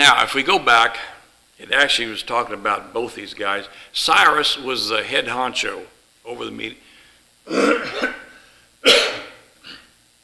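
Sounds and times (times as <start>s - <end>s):
speech: 0.1s - 6.8s, 7.5s - 8.2s
person coughing: 7.5s - 9.9s
person clearing throat during a class: 7.5s - 10.0s.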